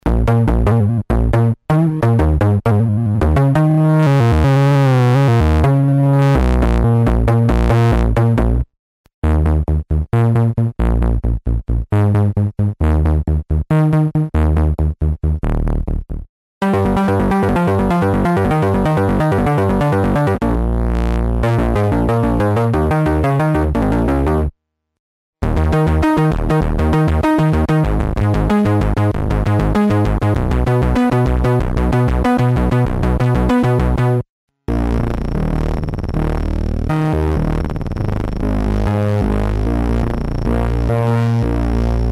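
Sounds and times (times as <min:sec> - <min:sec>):
synth bass: 0:00.0 - 0:24.6, 0:25.4 - 0:42.1.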